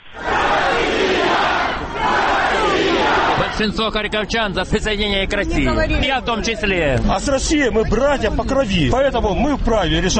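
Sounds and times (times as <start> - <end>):
large crowd shouting at a street rally: 0.0 - 3.8
speech: 3.6 - 10.1.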